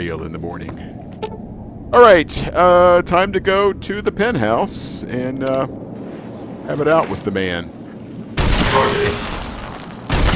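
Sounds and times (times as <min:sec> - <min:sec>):
speech: 0:00.0 - 0:01.0, 0:01.9 - 0:05.8, 0:06.7 - 0:07.8, 0:08.8 - 0:09.3
pulse grenade explosions in a video game: 0:08.3 - 0:10.3.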